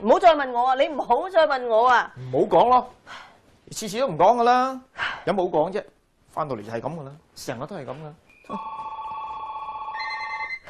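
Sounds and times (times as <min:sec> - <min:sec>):
speech: 0:00.0 - 0:08.8
telephone ringing with electronic trill: 0:08.3 - 0:10.6.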